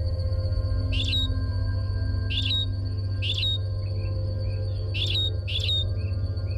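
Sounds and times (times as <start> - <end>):
constant thin high-pitched whine: 0.0 - 6.5
Darwin's finch singing simple song: 0.8 - 1.4, 2.2 - 6.5.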